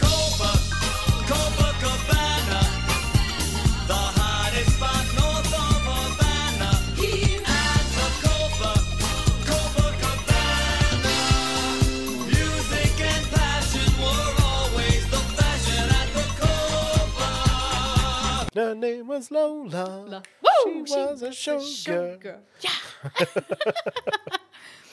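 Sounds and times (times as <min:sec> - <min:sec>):
full band playing a Broadway-style stage musical pop number with horns: 0:00.0 - 0:18.5
speech: 0:18.6 - 0:24.4
laughter: 0:23.0 - 0:24.6.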